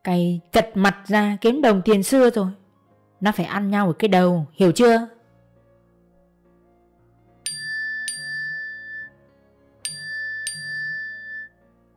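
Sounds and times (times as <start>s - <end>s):
speech: 0.0s - 2.6s, 3.2s - 5.2s
text message notification tone on a phone: 7.5s - 9.1s, 9.9s - 11.5s.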